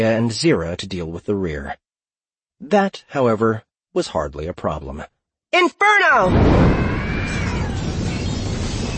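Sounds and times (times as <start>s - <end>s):
speech: 0.0s - 1.8s, 2.6s - 7.5s
breaking glass of beetles' crystalline bodies cracking in the heat: 6.3s - 8.9s
fiery blast roaring in a corridor: 6.3s - 8.9s.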